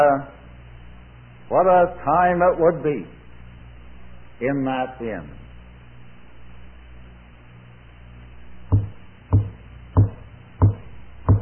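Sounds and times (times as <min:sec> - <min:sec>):
speech: 0:00.0 - 0:00.4, 0:01.5 - 0:03.2, 0:04.4 - 0:05.4
firm knocking on a wooden door: 0:08.7 - 0:11.4.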